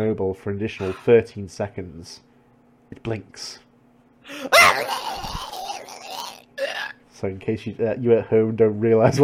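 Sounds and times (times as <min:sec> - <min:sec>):
speech: 0:00.0 - 0:02.3, 0:02.9 - 0:03.6, 0:04.2 - 0:05.4, 0:07.2 - 0:09.2
transformed creature yelling: 0:04.3 - 0:07.0.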